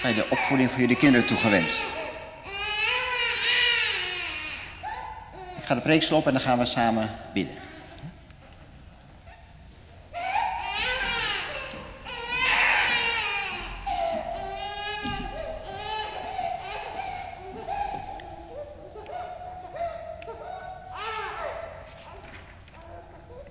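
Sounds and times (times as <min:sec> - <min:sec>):
speech: 0:00.0 - 0:02.0, 0:05.7 - 0:07.7
baby wailing during a church service: 0:00.0 - 0:05.8, 0:10.2 - 0:21.8.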